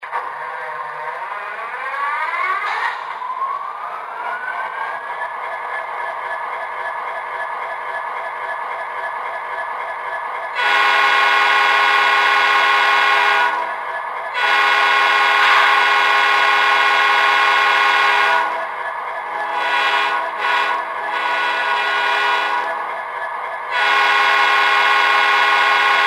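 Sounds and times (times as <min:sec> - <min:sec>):
SD60 electric train: 0:00.0 - 0:26.0.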